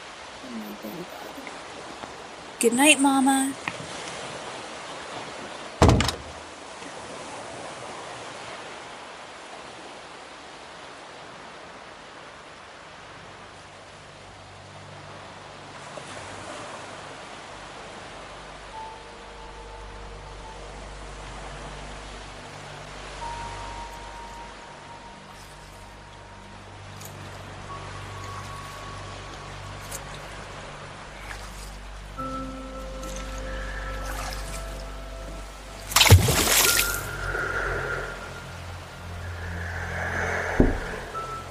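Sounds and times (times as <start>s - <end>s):
ocean waves from a sleep sound machine: 0.0s - 41.4s
speech: 0.8s - 2.0s, 2.6s - 3.8s
low hum: 17.4s - 41.4s.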